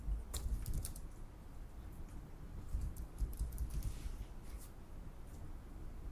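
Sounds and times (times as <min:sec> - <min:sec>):
low hum: 0:00.0 - 0:06.1
computer keyboard typing code: 0:00.3 - 0:01.2, 0:02.7 - 0:04.0.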